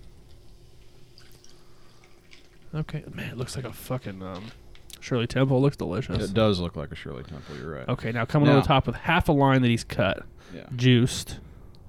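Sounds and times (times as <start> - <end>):
tonic water poured into a glass over cherry-flavored vodka: 1.1 - 2.8
speech: 2.7 - 11.8.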